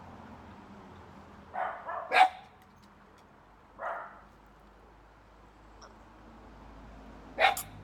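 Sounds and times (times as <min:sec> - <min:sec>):
dog barking in short, sharp yaps: 0:01.5 - 0:02.5, 0:03.8 - 0:04.2, 0:07.4 - 0:07.8.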